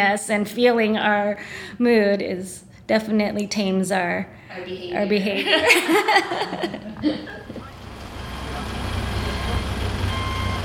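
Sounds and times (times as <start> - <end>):
speech: 0.0 - 7.5
laughter: 5.3 - 7.6
delivery truck engine rumbling: 7.2 - 10.6
delivery truck reversing beep: 7.6 - 10.6.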